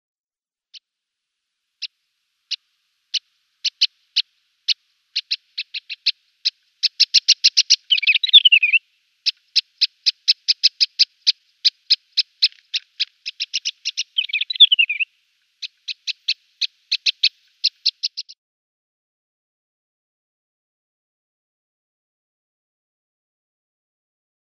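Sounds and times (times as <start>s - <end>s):
Scrub Warbler calls: 1.8s - 18.4s.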